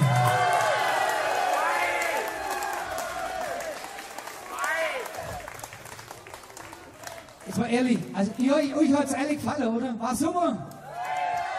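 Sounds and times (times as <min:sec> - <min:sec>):
crowd shouts and whoops: 0:00.0 - 0:05.6, 0:10.7 - 0:11.5
large audience applauding: 0:00.0 - 0:08.9, 0:10.7 - 0:11.5
speech: 0:07.6 - 0:10.7.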